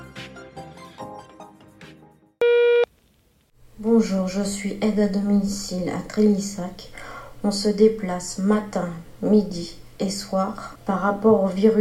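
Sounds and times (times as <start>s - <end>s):
voicemail electronic beep tone: 2.4s - 2.9s
speech: 3.8s - 11.7s.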